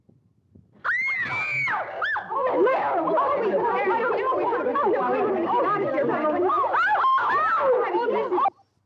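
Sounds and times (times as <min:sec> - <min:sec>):
women screaming: 0:00.8 - 0:02.4, 0:06.5 - 0:07.8
women talking rapidly: 0:02.3 - 0:08.5.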